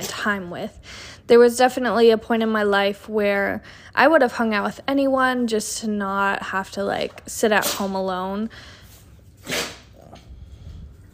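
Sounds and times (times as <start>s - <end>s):
speech: 0.2s - 8.8s
dog sneezing: 7.6s - 8.0s, 9.4s - 10.1s.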